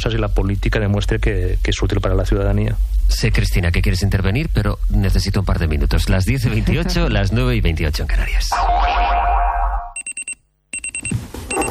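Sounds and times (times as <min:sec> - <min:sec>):
speech: 0:00.0 - 0:09.2
alarm clock electronic beeping: 0:10.0 - 0:11.6.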